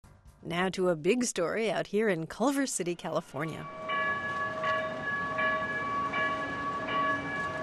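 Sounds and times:
speech: 0.4 - 3.8
light rail train arriving at a station with steady tonal whine: 3.6 - 7.6.

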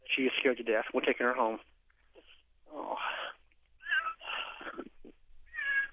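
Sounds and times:
speech: 0.2 - 1.8
cat meowing plaintively: 3.8 - 4.2, 5.5 - 5.9.

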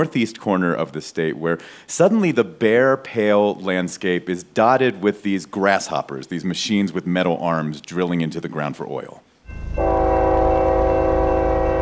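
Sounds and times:
speech: 0.0 - 9.9
train horn blaring as freight trains carrying oil go by in northeast Montana: 9.5 - 11.8.

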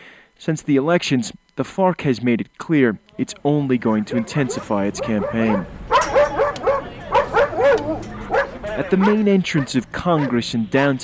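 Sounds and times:
speech: 0.4 - 5.8, 8.8 - 11.0
guard dog barking at the main entrance of a congress building: 4.0 - 11.0.

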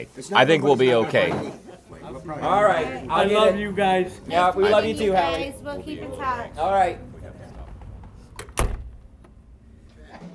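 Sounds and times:
speech: 0.0 - 7.1
door banging shut: 8.3 - 9.2.

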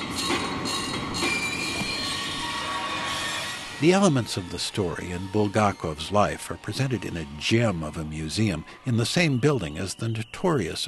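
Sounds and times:
tram car rolling on rails: 0.0 - 8.6
tram metallic wheel squeals: 0.0 - 10.8
speech: 3.8 - 10.8.

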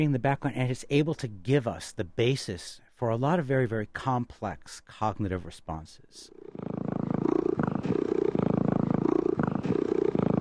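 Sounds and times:
speech: 0.0 - 6.4
domestic cat purring: 6.3 - 10.3.

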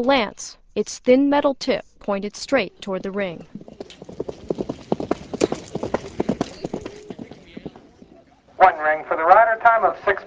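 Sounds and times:
speech: 0.0 - 4.0, 8.6 - 10.2
horse hooves galloping on firm ground: 2.9 - 8.9.

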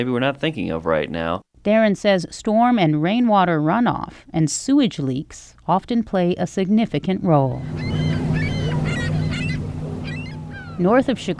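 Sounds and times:
speech: 0.0 - 8.2, 10.8 - 11.3
seagulls calling on a sandy lakeshore beach in Waukegan, Illinois: 7.4 - 11.3
steady low rumble of lakeshore surf: 7.4 - 11.3.

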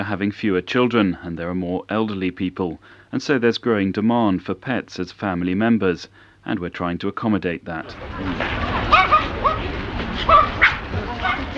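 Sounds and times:
speech: 0.0 - 8.7, 10.2 - 10.6
several dogs barking and yipping at an off-leash dog park in Tokyo: 8.0 - 11.5.

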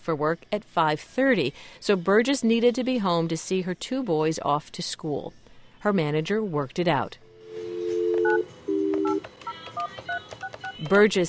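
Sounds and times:
speech: 0.0 - 7.2, 10.8 - 11.2
two steady low phone tones: 7.4 - 10.8
short phone keypad beeps: 7.9 - 11.0.

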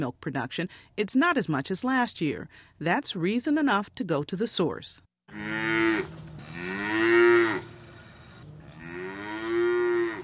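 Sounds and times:
speech: 0.0 - 6.2
dairy cows on a farm in Illinois mooing: 5.3 - 10.2.

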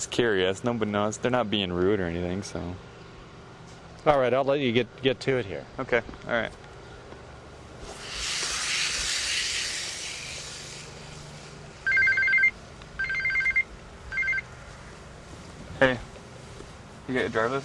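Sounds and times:
speech: 0.0 - 2.9, 4.0 - 6.6, 15.8 - 16.1, 17.1 - 17.6
steady hiss: 7.7 - 11.9
cell phone ringing: 11.8 - 14.5.

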